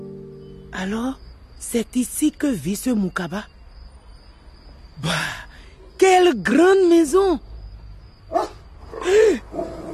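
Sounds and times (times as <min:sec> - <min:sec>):
speech: 0:00.8 - 0:03.5, 0:05.0 - 0:05.4, 0:06.2 - 0:07.5, 0:08.3 - 0:09.7
dog barking: 0:08.3 - 0:08.6.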